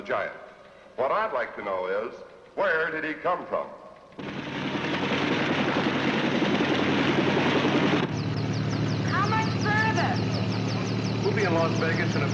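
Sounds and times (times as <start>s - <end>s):
speech: 0.0s - 4.3s, 11.4s - 12.3s
Army helicopter engine roar and rotor hum: 4.0s - 12.3s
faint high chirping tones: 8.1s - 12.3s.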